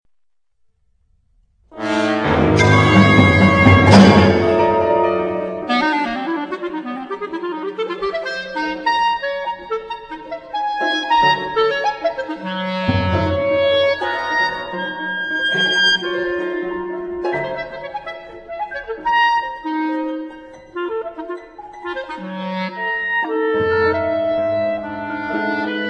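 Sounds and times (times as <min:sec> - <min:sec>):
clarinet concerto: 0:01.7 - 0:25.8.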